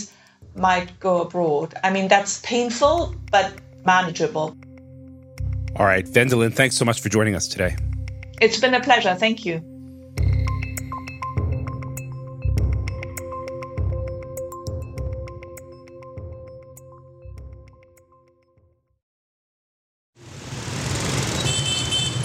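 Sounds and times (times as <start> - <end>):
music: 0.0 - 19.0
speech: 0.6 - 4.6, 5.8 - 10.3
dense street traffic in Hanoi: 20.2 - 22.2
motorbike and SUV engines roaring in Hanoi street traffic: 20.2 - 22.2.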